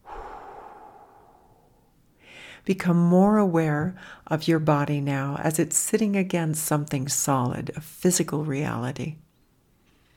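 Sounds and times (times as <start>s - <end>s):
deep inhale and exhale through the mouth during a guided relaxation exercise: 0.0s - 2.6s
speech: 2.6s - 9.2s.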